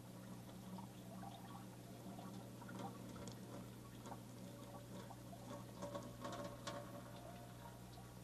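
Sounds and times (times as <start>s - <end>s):
very hot water pouring and splashing with steam: 0.0s - 8.2s.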